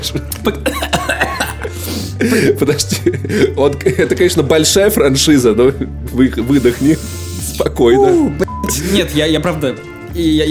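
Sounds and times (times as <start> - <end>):
speech: 0.0 - 0.9, 2.2 - 10.4
laughter: 0.0 - 4.2
man coughing and choking: 0.4 - 3.6.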